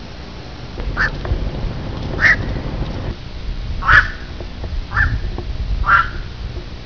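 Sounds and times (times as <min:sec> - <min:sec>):
black-crowned night heron call: 0:00.8 - 0:01.3, 0:02.1 - 0:02.8, 0:03.8 - 0:06.4.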